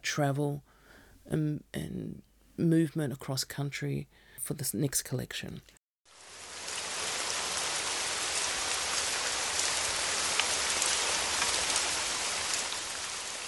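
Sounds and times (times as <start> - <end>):
speech: 0.1 - 0.7, 1.3 - 5.8
steady rain: 6.1 - 13.4.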